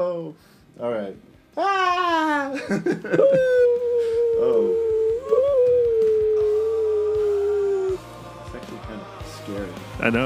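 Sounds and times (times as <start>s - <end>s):
speech: 0.0s - 3.8s, 9.5s - 10.2s
laughter: 2.5s - 4.0s
voice imitating a whale call: 3.4s - 8.0s.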